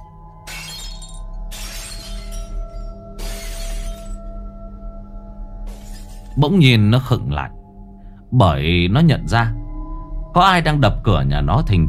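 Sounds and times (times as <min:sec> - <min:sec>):
chipped clay bowls thrown and shattering: 0:00.4 - 0:04.3, 0:05.7 - 0:06.4
speech: 0:06.4 - 0:07.6, 0:08.3 - 0:09.6, 0:10.4 - 0:11.8.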